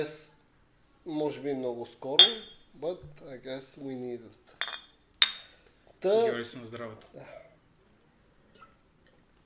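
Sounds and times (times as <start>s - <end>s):
speech: 0.0s - 0.3s, 1.0s - 4.7s, 6.0s - 7.4s
glasses clinking in a toast: 2.2s - 2.6s, 4.6s - 5.5s.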